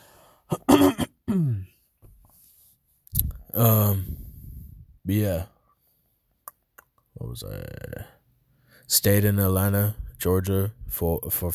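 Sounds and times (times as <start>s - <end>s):
man clearing his throat in the morning: 0.5s - 1.8s
man coughing in the morning: 0.5s - 1.8s
speech: 1.3s - 1.7s, 3.6s - 4.1s, 5.1s - 5.5s, 7.3s - 8.1s, 8.9s - 11.5s.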